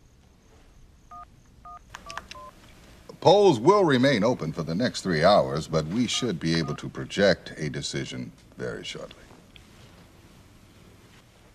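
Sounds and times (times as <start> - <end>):
telephone keypad DTMF tones dialing a number: 1.1 - 2.5, 6.1 - 6.8
speech: 3.2 - 9.3.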